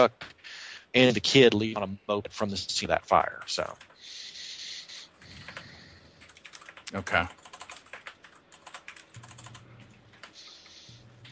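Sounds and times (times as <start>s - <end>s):
speech: 0.0s - 0.3s, 0.9s - 4.2s, 6.9s - 7.4s
typing on a computer keyboard while taking notes: 3.5s - 4.0s, 5.1s - 10.4s.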